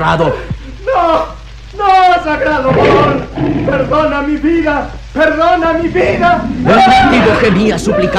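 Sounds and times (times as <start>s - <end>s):
speech: 0.0s - 8.1s
loud tiger roar sliding into a rough growl: 2.7s - 4.1s, 5.8s - 8.1s.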